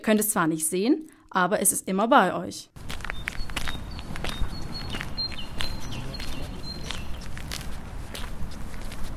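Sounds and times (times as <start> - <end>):
speech: 0.0 - 2.9
footsteps walking on a hard outdoor surface: 2.8 - 9.1
faint bird chirps: 3.1 - 7.3.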